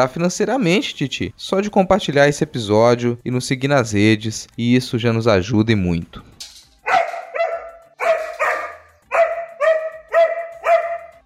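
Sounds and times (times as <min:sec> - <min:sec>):
speech: 0:00.0 - 0:06.3
dog barking: 0:06.8 - 0:11.2.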